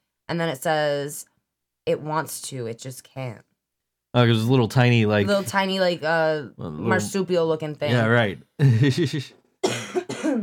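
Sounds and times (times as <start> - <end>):
speech: 0.3 - 3.5, 4.2 - 9.4
harsh chesty coughs: 9.6 - 10.4.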